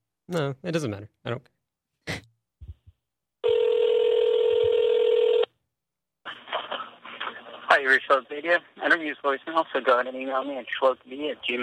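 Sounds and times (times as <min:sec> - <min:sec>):
speech: 0:00.3 - 0:02.2, 0:07.7 - 0:11.6
telephone ring tone: 0:03.4 - 0:05.5.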